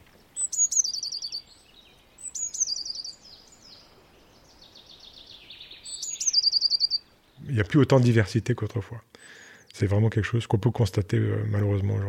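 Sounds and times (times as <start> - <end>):
blue tit singing outdoors: 0.0 - 12.0
speech: 7.6 - 12.0.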